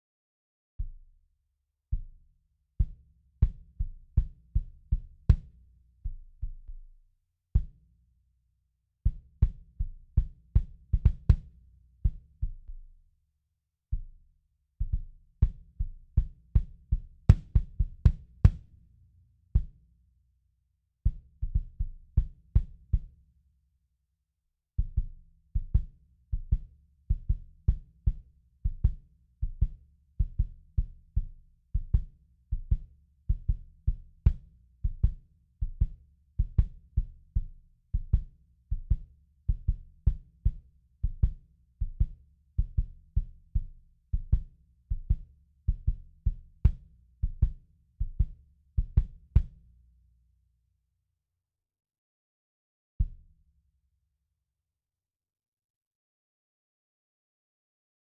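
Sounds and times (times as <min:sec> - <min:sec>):
kick drum: 0:00.8 - 0:01.2, 0:01.8 - 0:07.9, 0:09.0 - 0:13.1, 0:13.9 - 0:19.0, 0:19.6 - 0:19.9, 0:21.0 - 0:23.2, 0:24.8 - 0:49.6, 0:53.0 - 0:53.3.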